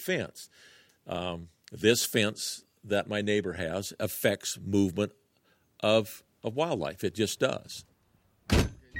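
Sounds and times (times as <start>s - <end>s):
speech: 0.0s - 5.2s, 5.8s - 7.9s
car door thud: 8.5s - 8.8s.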